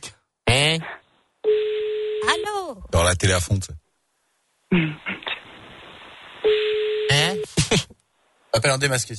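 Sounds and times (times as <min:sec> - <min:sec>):
telephone line ringing tone through the handset: 0:01.4 - 0:02.6, 0:06.4 - 0:07.4
speech: 0:02.3 - 0:03.8, 0:04.7 - 0:05.1, 0:08.6 - 0:09.1.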